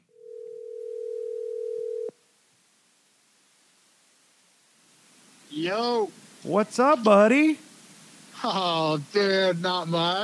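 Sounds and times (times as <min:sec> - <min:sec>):
telephone line tone as a call is dialed out: 0:00.0 - 0:02.1
quiet hiss: 0:00.0 - 0:10.2
speech: 0:05.6 - 0:07.7, 0:08.4 - 0:10.2.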